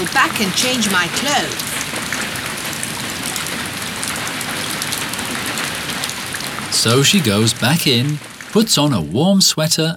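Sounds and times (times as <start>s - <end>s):
speech: 0.0s - 1.7s, 6.7s - 9.9s
steady rain spattering on a hard surface: 0.0s - 9.9s.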